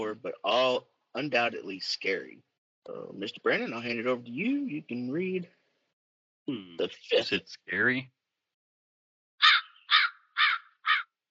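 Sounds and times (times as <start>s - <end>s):
speech: 0.0s - 5.6s, 6.4s - 8.2s
crows cawing: 9.4s - 11.2s.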